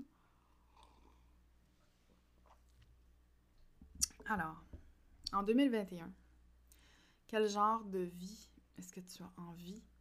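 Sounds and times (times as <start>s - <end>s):
soft slurping of hot herbal tea: 0.4s - 1.4s
speech: 4.3s - 4.7s, 5.3s - 6.2s, 7.3s - 9.9s.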